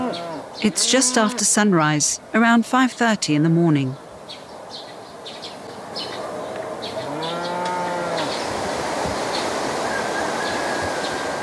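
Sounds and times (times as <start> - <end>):
cow mooing at a high pasture almost 2,000 meters above sea level: 0.0 - 1.5, 7.0 - 8.4
constant rushing outdoor background: 0.0 - 11.4
speech: 0.6 - 4.0.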